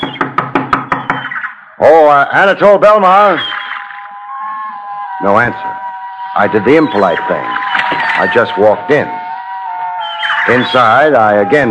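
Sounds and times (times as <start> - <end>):
knocking on a shack door: 0.0 - 1.3
speech: 1.8 - 3.6, 5.2 - 5.8, 6.4 - 9.2, 10.4 - 11.6.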